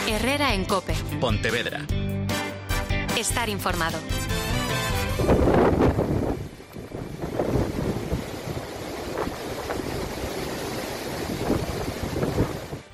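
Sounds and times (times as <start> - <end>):
speech: 0.1 - 2.0, 3.2 - 4.5, 5.2 - 6.1
heavy rain in Pontevedra province: 4.9 - 12.9
storm winds with gusts over 100 km/h in Pontevedra province: 4.9 - 12.9.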